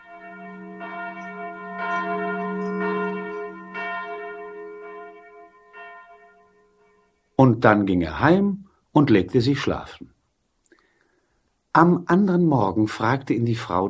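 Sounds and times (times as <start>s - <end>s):
church bell ringing: 0.0s - 7.4s
speech: 7.4s - 10.2s, 11.8s - 13.8s.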